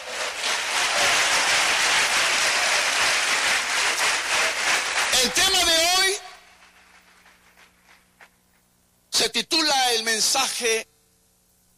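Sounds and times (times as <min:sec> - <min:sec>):
large audience applauding at a religious service: 0:00.0 - 0:07.8
speech: 0:10.2 - 0:10.9.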